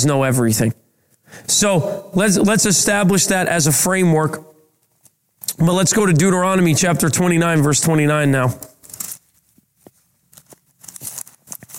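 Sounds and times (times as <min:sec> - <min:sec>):
speech: 0:00.0 - 0:04.5, 0:05.6 - 0:08.7
thin pages of a paper Bible being flipped: 0:08.8 - 0:11.7.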